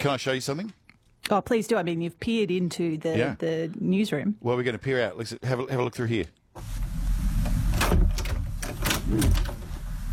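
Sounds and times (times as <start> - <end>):
speech: 0.0 - 6.8
noisy door being pulled open: 6.6 - 10.1.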